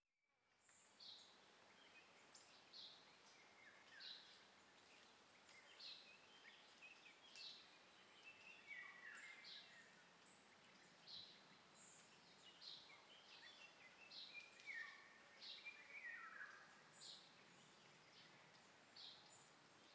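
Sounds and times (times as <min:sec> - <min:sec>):
birds in a very old quarry: 0:00.7 - 0:19.9.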